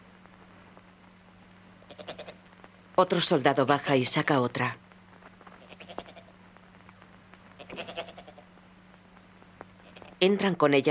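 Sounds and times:
steady low hum: 0.0s - 10.9s
sheep bleating: 1.9s - 2.4s, 5.6s - 6.3s, 7.6s - 8.5s
speech: 3.0s - 4.8s, 10.2s - 10.9s.

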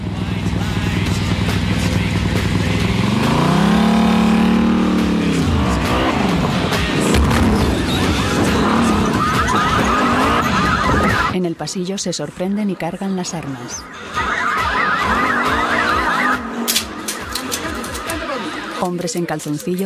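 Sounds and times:
loud motorcycle engine revving and whining: 0.0s - 11.4s, 13.8s - 18.9s
motorcycle tires screeching: 0.0s - 11.4s, 13.6s - 18.9s
speech: 11.6s - 14.3s, 18.8s - 19.8s.

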